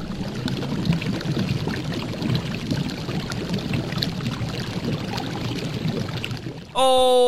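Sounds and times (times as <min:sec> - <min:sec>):
water boiling and bubbling: 0:00.0 - 0:07.2
speech: 0:06.8 - 0:07.2.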